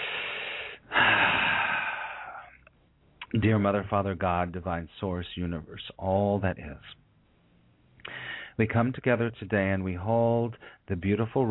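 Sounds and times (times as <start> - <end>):
person taking a deep breath with eyes closed before a prayer: 0.0 - 2.7, 8.0 - 8.6, 10.6 - 10.9
speech: 3.3 - 7.0, 8.6 - 11.4.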